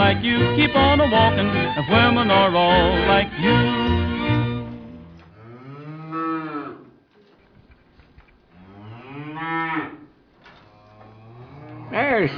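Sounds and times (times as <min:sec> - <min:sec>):
speech: 0:00.1 - 0:04.1, 0:12.2 - 0:12.3
cow mooing: 0:05.3 - 0:06.9, 0:08.5 - 0:10.1, 0:10.7 - 0:12.3.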